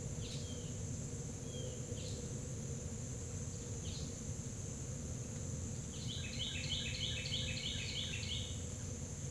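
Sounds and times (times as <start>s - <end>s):
Carolina wren song and sharp notes: 0.0s - 0.8s, 1.4s - 2.4s, 5.9s - 8.7s
constant high insect hum: 0.0s - 9.2s.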